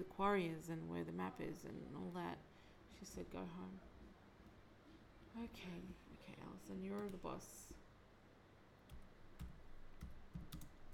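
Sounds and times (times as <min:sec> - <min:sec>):
speech: 0:00.0 - 0:03.9, 0:05.3 - 0:07.8
faint typing on a computer keyboard: 0:08.9 - 0:10.9.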